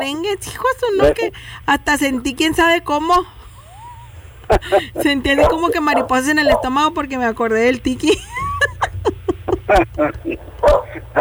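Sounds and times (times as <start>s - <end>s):
speech: 0.0s - 3.4s, 4.5s - 8.4s, 9.7s - 11.2s
low hum: 0.0s - 11.2s
laughter: 3.4s - 6.6s, 7.9s - 11.2s
small dog barking: 4.6s - 6.9s, 10.6s - 11.2s.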